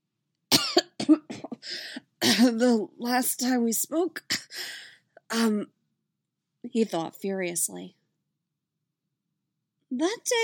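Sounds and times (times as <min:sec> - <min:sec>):
man coughing after choking on hot chocolate: 0:00.5 - 0:01.6
speech: 0:02.3 - 0:04.4, 0:05.3 - 0:05.8, 0:06.6 - 0:08.0, 0:09.9 - 0:10.4.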